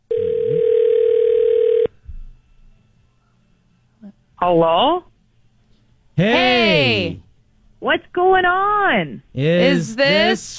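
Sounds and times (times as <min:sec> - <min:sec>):
electronic telephone ring tone placing a prank call: 0:00.1 - 0:01.9
speech: 0:04.5 - 0:05.1, 0:06.2 - 0:07.2, 0:07.8 - 0:10.5.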